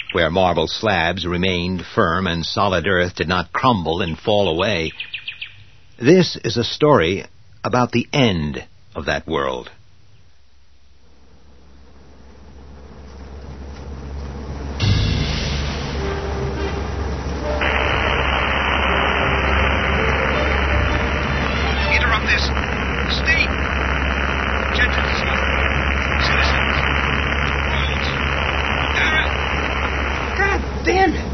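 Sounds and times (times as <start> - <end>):
speech: 0.2 - 5.3, 6.0 - 9.8
road noise: 10.9 - 31.3
car engine droning while driving: 11.0 - 31.3.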